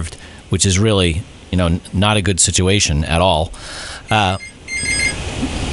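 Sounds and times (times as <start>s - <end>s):
speech: 0.0s - 5.6s
telephone with a bright electronic trill ringing: 4.1s - 5.3s.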